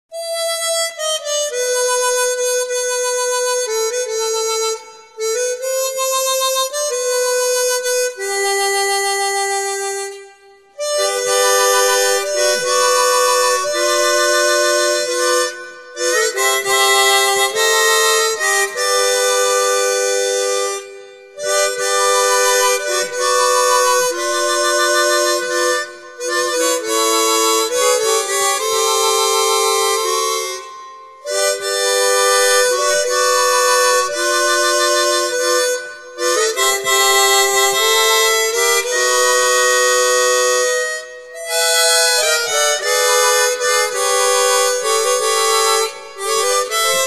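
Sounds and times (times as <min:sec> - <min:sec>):
chromatic harmonica playing hymns: 0:00.1 - 0:47.0.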